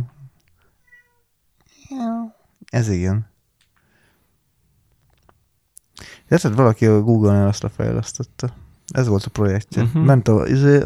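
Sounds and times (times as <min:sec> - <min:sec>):
cat meowing loudly: 0:00.7 - 0:02.0
speech: 0:01.9 - 0:03.3, 0:06.3 - 0:10.8.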